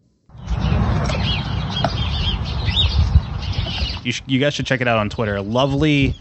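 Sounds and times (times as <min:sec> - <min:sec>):
barnyard birds chirping and clucking: 0:00.3 - 0:06.1
steady rumbling outdoor background: 0:00.3 - 0:06.1
speech: 0:04.0 - 0:06.1.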